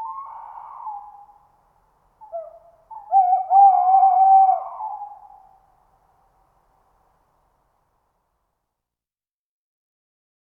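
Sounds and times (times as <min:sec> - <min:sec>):
Tawny owl hooting with quavering hoot: 0:00.0 - 0:01.5, 0:02.2 - 0:05.7.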